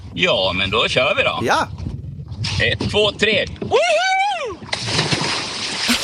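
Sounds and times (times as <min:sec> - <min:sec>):
speech: 0:00.2 - 0:01.8, 0:02.6 - 0:04.2
person yelling: 0:01.4 - 0:01.7
person jumping into lake with full-body splash: 0:04.6 - 0:06.0.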